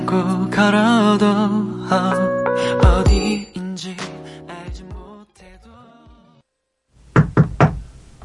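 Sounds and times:
speech: 0.2s - 2.3s
firm knocking on a wooden door: 7.2s - 7.8s.

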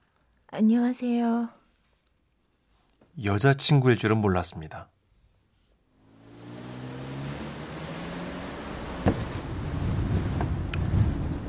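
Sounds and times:
speech: 0.5s - 1.6s, 3.2s - 5.0s
wind rushing through an open car window crossing a river bridge: 6.2s - 11.4s
brief thumps: 9.0s - 9.4s.

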